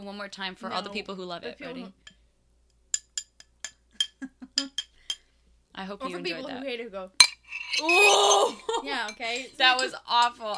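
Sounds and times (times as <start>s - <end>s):
speech: 0.1s - 2.2s, 4.2s - 4.8s, 5.8s - 10.5s
cutlery scraping and clinking against bowls as two people eat: 3.0s - 5.3s, 7.2s - 10.5s.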